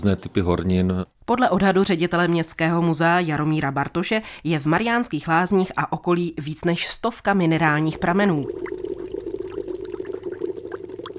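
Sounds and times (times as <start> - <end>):
speech: 0.0 - 8.9
spring water welling up inside a hollow tree trunk in Mariánské Lázně: 7.8 - 11.1.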